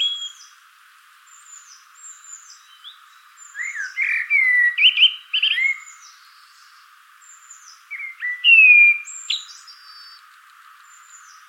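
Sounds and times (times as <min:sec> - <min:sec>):
common blackbird Turdus merula whistling: 0:00.0 - 0:00.4, 0:02.6 - 0:06.0, 0:07.9 - 0:10.2.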